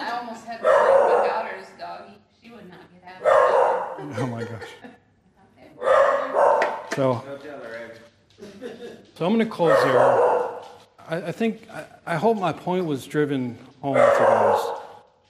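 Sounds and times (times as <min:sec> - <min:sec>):
dogs barking during a service held at a home: 0:00.4 - 0:01.9, 0:03.1 - 0:04.3, 0:05.8 - 0:07.0, 0:09.5 - 0:10.9, 0:13.8 - 0:15.1
laughter: 0:04.0 - 0:05.2, 0:08.4 - 0:09.3
speech: 0:07.0 - 0:07.3, 0:09.2 - 0:10.3, 0:11.1 - 0:14.7.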